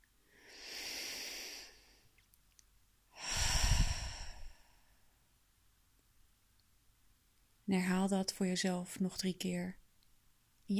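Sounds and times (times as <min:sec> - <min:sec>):
deep breathing in through the nose and out through the mouth: 0:00.3 - 0:02.1, 0:03.2 - 0:05.1
speech: 0:07.7 - 0:09.8.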